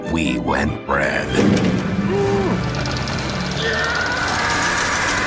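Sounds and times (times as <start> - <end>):
speech: 0.1 - 2.7, 3.6 - 4.1
car engine running with rising whine: 1.7 - 5.1.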